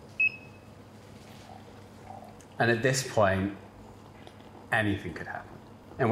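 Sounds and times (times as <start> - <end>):
electronic timer beep as a coffee brewing timer is started: 0.2 - 0.7
speech: 2.6 - 3.6, 4.7 - 6.0.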